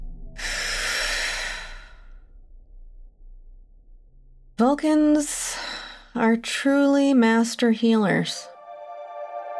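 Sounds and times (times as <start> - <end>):
deep breath: 0.4 - 2.4, 5.5 - 6.2
speech: 4.6 - 5.4, 6.2 - 8.5.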